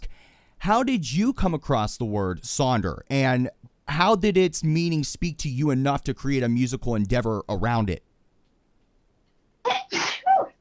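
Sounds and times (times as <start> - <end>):
speech: 0.6 - 8.1
loud sneeze: 9.7 - 10.5.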